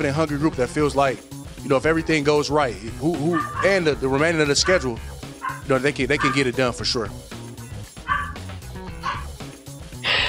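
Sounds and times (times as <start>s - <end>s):
speech: 0.0s - 5.1s, 5.7s - 7.3s
pet dogs barking: 3.2s - 6.7s, 8.0s - 9.4s.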